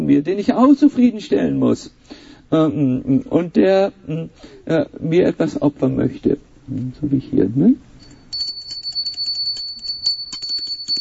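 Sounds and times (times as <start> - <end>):
speech: 0.1 - 7.9
bright high bell ringing rapidly: 8.0 - 10.9.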